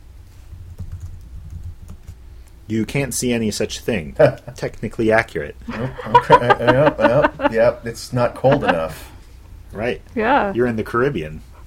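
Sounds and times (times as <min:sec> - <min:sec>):
typing a command on a computer keyboard: 0:00.7 - 0:02.6
speech: 0:02.7 - 0:09.1, 0:09.7 - 0:11.5
laughter: 0:05.7 - 0:09.1.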